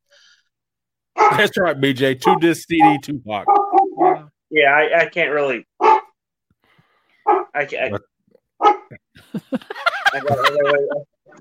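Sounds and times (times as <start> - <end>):
75-pound young dog barking: 1.2 - 1.4, 3.5 - 4.3, 5.8 - 6.2, 7.2 - 7.6, 8.6 - 8.9
speech: 1.3 - 3.6, 4.5 - 5.7, 7.6 - 8.1, 10.1 - 11.4
laughter: 9.0 - 11.4.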